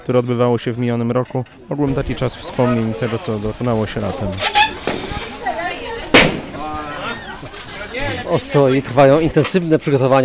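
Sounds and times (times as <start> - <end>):
voices chattering: 0.0 - 10.2
speech: 0.1 - 4.6, 8.3 - 10.2
balloons popping: 6.1 - 6.6.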